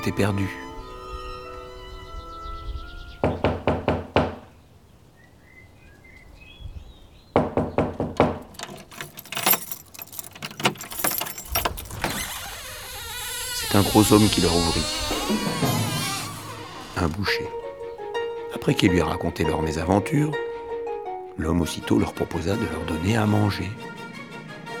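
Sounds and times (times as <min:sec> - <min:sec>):
speech: 0:00.0 - 0:00.6, 0:14.0 - 0:15.7, 0:17.0 - 0:17.6, 0:18.6 - 0:20.4, 0:21.4 - 0:24.0
quick firm knocks on a wooden door: 0:03.2 - 0:04.4, 0:07.4 - 0:08.4
clattering shuffling movement of a door being handled: 0:08.1 - 0:17.3.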